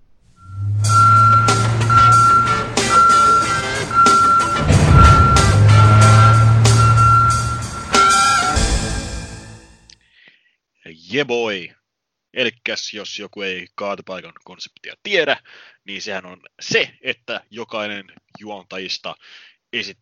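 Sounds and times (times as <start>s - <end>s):
garbage truck heavy diesel engine rumble: 0.0s - 9.5s
garbage truck reversing alarm beeping: 0.4s - 8.6s
clanking metal and bangs from garbage truck machinery: 0.6s - 8.9s
speech: 11.2s - 19.9s.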